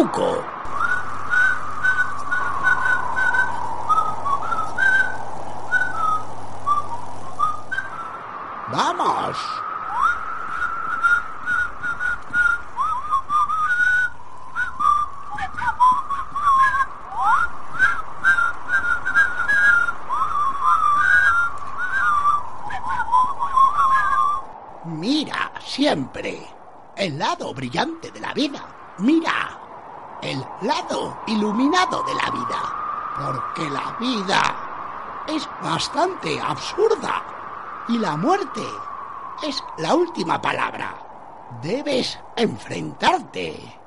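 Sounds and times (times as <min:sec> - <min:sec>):
speech: 0:00.0 - 0:00.6, 0:08.7 - 0:09.6, 0:25.9 - 0:29.5, 0:30.6 - 0:34.6, 0:35.3 - 0:37.3, 0:37.9 - 0:43.8
person whistling a bouncy lilting tune: 0:00.8 - 0:08.1, 0:09.9 - 0:24.4.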